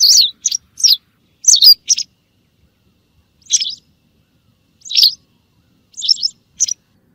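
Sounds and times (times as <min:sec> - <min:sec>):
white wagtail Motacilla alba twittering song: 0:00.0 - 0:02.6, 0:03.3 - 0:03.9, 0:04.8 - 0:06.8.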